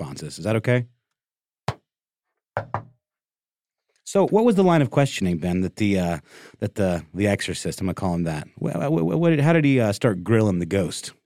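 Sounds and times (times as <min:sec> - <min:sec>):
speech: 0:00.2 - 0:01.0, 0:02.6 - 0:02.8, 0:04.1 - 0:11.2
sharp knocks: 0:02.6 - 0:03.0.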